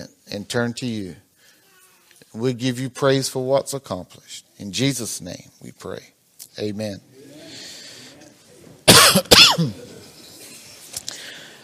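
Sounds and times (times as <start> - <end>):
speech: 0.3 - 1.2, 2.3 - 7.1
harsh coughs from sinus and allergy: 8.9 - 10.0.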